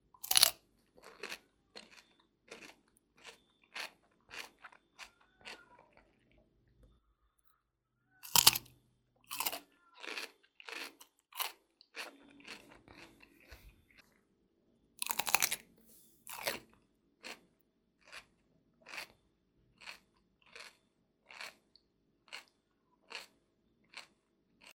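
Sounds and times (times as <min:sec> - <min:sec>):
biting off half of a cucumber: 0:00.2 - 0:06.1, 0:08.2 - 0:08.7, 0:09.3 - 0:13.7, 0:15.0 - 0:15.6, 0:16.3 - 0:17.4, 0:19.8 - 0:21.6.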